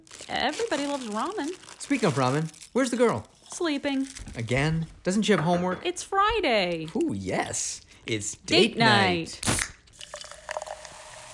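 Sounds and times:
speech: 0.3 - 9.7
person drinking water in sips and swallows: 9.9 - 11.0.

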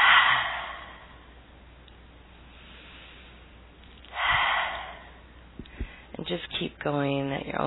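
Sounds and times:
deep breath in and out: 0.0 - 1.5, 2.5 - 3.5, 4.1 - 6.1
speech: 6.3 - 7.6.

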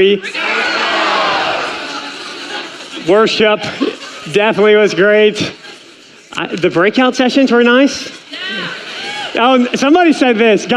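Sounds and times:
speech: 0.0 - 0.5, 3.0 - 5.6, 6.4 - 8.6, 9.4 - 10.7
audience shouting answers all at once: 0.0 - 3.0
laughter: 0.4 - 10.7.

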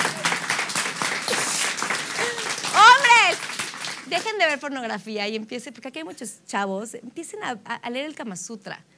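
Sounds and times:
audience applauding: 0.0 - 4.6
speech: 4.1 - 8.9.

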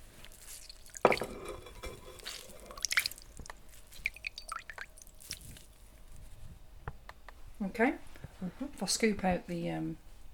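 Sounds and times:
liquid squeezed out of linen gauze straining cloth: 0.0 - 1.3, 2.1 - 5.8
drips and trickles spattering into a bowl: 0.5 - 5.6
speech: 7.7 - 10.0.

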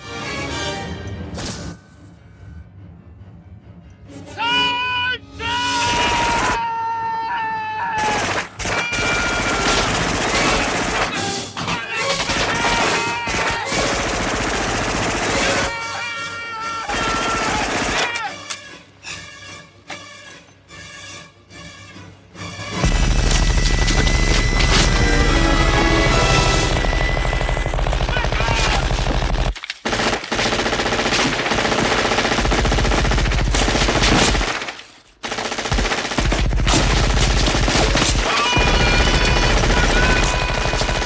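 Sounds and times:
people shouting: 4.3 - 18.5, 25.0 - 29.3, 37.9 - 41.0
machine-gun and minigun fire into trees: 8.2 - 11.2, 12.2 - 15.7, 22.8 - 25.1, 26.1 - 41.0.

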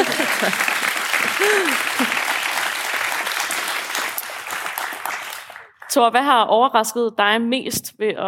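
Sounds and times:
laughter: 0.0 - 2.4
live audience applause at a festival: 0.0 - 6.0
speech: 0.4 - 2.2, 6.0 - 8.2.

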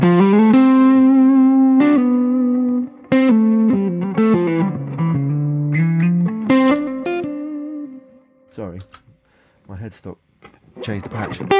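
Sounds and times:
buzzy distorted electric guitar with spring reverb playing a melodic line: 0.0 - 7.9, 10.4 - 11.5
speech: 8.6 - 9.0, 9.7 - 10.2, 10.8 - 11.5.

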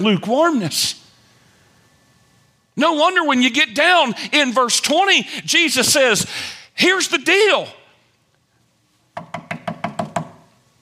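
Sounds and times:
speech: 0.0 - 1.0, 2.8 - 7.8
sharp raps on a door: 9.2 - 10.4.

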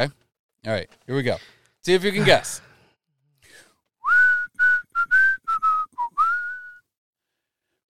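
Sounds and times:
speech: 0.0 - 2.7
person whistling a song melody: 4.0 - 6.9.

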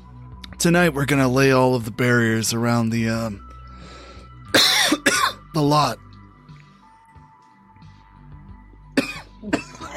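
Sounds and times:
speech: 0.6 - 5.0, 5.6 - 6.0
person coughing: 4.5 - 5.5, 9.0 - 9.9
person clearing throat: 4.6 - 5.4, 9.0 - 9.9.

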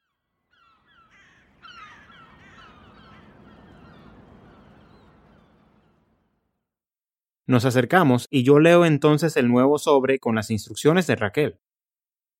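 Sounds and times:
seagulls calling over the coast: 0.0 - 6.4
speech: 7.5 - 11.7.

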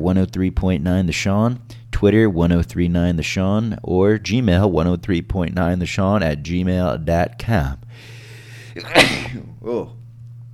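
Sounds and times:
speech: 0.0 - 8.2, 8.8 - 10.0
low steady hum: 0.0 - 10.5
person sneezing: 8.8 - 9.6.

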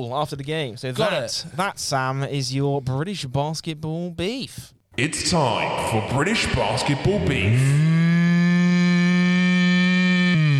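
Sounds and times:
speech: 0.0 - 7.9
person imitating a cow's moo: 7.5 - 10.5.

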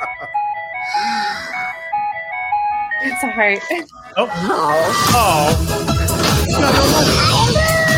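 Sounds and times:
tinkling electronic ice cream truck jingle: 0.0 - 4.3
speech: 3.1 - 7.8.

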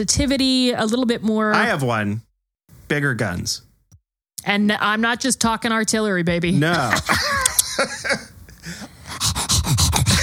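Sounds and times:
speech: 0.0 - 2.3, 2.9 - 3.7, 4.4 - 8.9
laughter: 6.7 - 8.8
person panting like a cartoon wolf: 8.6 - 10.2.

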